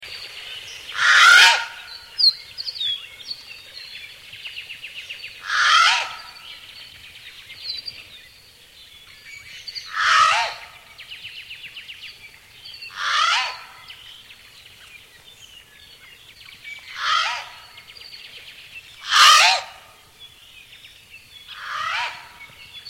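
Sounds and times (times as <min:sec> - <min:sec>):
Hawaiian alala crow calling: 0:00.9 - 0:02.0, 0:05.4 - 0:06.5, 0:09.9 - 0:10.8, 0:12.9 - 0:13.9, 0:16.9 - 0:17.7, 0:19.0 - 0:19.9, 0:21.5 - 0:22.5.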